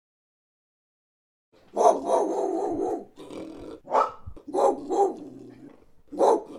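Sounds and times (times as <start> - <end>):
dog barking: 1.7 - 3.2, 3.8 - 5.4, 6.1 - 6.5.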